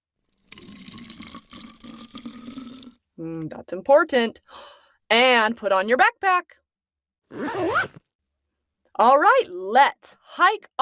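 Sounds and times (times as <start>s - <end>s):
water pouring into a water bottle: 0.3s - 3.0s
speech: 3.2s - 6.6s, 7.3s - 8.0s, 9.0s - 10.8s.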